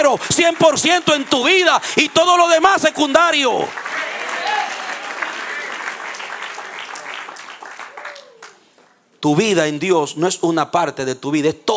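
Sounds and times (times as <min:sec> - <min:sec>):
audience applauding: 0:00.0 - 0:09.0
people cheering: 0:00.0 - 0:09.0
speech: 0:00.1 - 0:04.0, 0:09.2 - 0:11.7.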